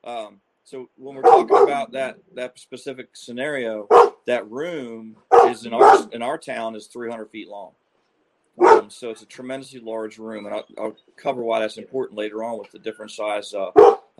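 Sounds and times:
speech: 0.0 - 7.8, 8.6 - 14.0
dog barking in short sharp bursts: 1.2 - 1.8, 3.9 - 4.2, 5.3 - 6.2, 8.6 - 8.9, 13.7 - 14.1.

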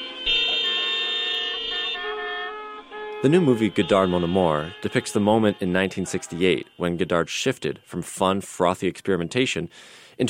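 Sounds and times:
car horns honking in a traffic jam: 0.0 - 9.2
low drone of traffic: 0.0 - 10.2
speech: 3.2 - 10.2.

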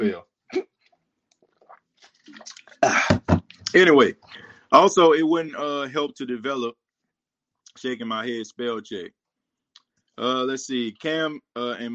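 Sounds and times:
speech: 0.0 - 0.3, 3.7 - 6.8, 7.8 - 9.2, 10.2 - 11.9
wet sips and gulps of water from a bottle: 0.5 - 3.8
small swallowing sounds: 1.4 - 3.8.

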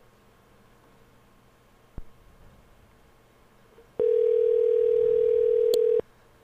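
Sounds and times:
outgoing phone call ringing tone: 4.0 - 6.0.

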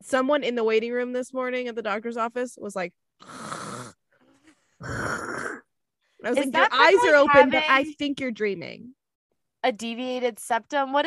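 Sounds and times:
speech: 0.0 - 3.5, 4.8 - 5.5, 6.2 - 9.0, 9.6 - 11.0
person's voice imitating loud snoring while awake: 3.2 - 4.0, 4.8 - 5.7.

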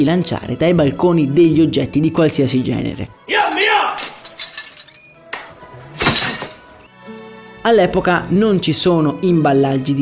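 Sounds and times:
speech: 0.0 - 4.2, 7.6 - 9.9
sharp crash of broken glass: 4.0 - 5.1, 6.0 - 6.7
broken glass pieces clinking and rattling: 4.0 - 5.2, 6.0 - 6.7.

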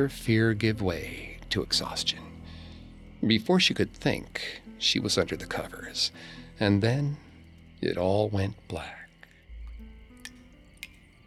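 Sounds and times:
speech: 0.0 - 2.3, 3.2 - 7.2, 7.8 - 9.0
drops of water falling with a crisp plink: 9.5 - 11.2.

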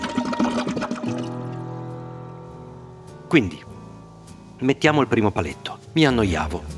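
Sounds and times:
toilet flushing: 0.0 - 1.6
speech: 3.3 - 3.7, 4.6 - 6.7.

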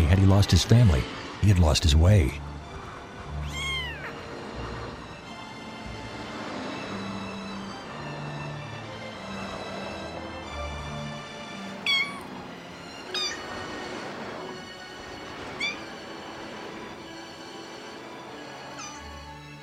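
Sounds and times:
steady low droning background: 0.0 - 19.6
speech: 0.1 - 2.5
kitten meowing: 3.4 - 4.2, 11.8 - 12.4, 13.1 - 13.6, 15.4 - 16.0, 18.8 - 19.1.

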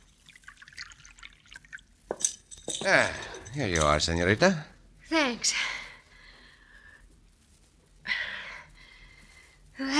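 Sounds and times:
water poured into a glass: 0.0 - 2.0
glass clink: 0.7 - 4.0
speech: 2.8 - 5.8.

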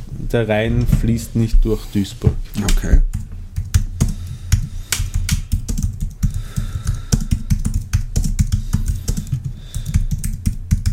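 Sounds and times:
speech: 0.3 - 3.1
typing on a computer keyboard with plastic key clicks: 2.7 - 10.9.

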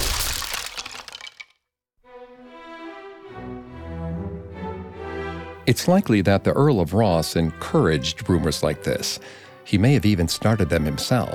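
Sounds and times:
crash through a thatched ceiling with splintering cracking debris: 0.0 - 1.5
sustained music: 2.0 - 11.3
speech: 5.7 - 11.3.

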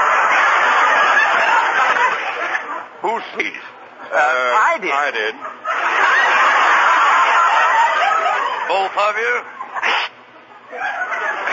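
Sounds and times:
laughter: 0.0 - 11.5
speech: 3.0 - 5.6, 8.7 - 10.0, 10.7 - 11.5
person sneezing: 9.8 - 10.2.

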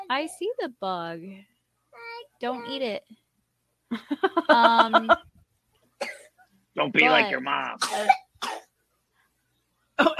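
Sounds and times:
speech: 0.1 - 1.5, 2.4 - 3.2, 3.9 - 5.3, 6.8 - 8.2
laughter: 3.9 - 5.2, 6.8 - 7.8
person coughing sharply: 6.0 - 6.3, 7.0 - 8.6, 10.0 - 10.1.

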